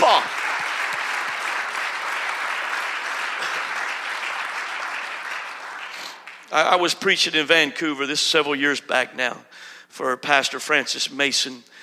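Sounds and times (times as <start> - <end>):
large group applauding: 0.0 - 7.1
speech: 6.5 - 11.8.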